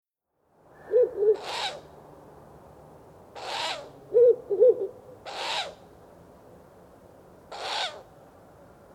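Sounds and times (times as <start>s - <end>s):
owl hooting: 0.8s - 1.8s, 3.4s - 5.8s, 7.5s - 8.1s
owl hissing: 0.9s - 1.8s, 3.4s - 3.9s, 5.3s - 5.8s, 7.5s - 8.0s.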